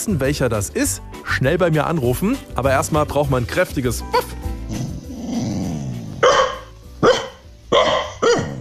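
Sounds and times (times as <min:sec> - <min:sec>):
speech: 0:00.0 - 0:04.8
female dog growling at home in Hanau: 0:04.6 - 0:06.3
female dog barking at home in Hanau: 0:06.2 - 0:08.5.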